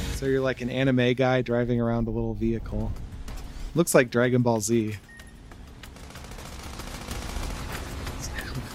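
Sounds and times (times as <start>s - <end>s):
speech: 0.2s - 3.0s, 3.7s - 5.1s
video game gunfire shooting at an alligator: 5.3s - 8.7s.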